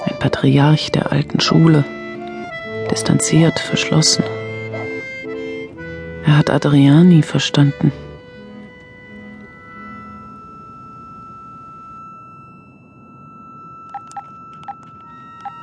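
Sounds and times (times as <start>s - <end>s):
steady low hum: 0.0s - 15.6s
speech: 0.2s - 2.0s, 2.9s - 4.4s, 6.4s - 8.0s
mobile phone key beeps while dialing voicemail: 13.9s - 15.6s.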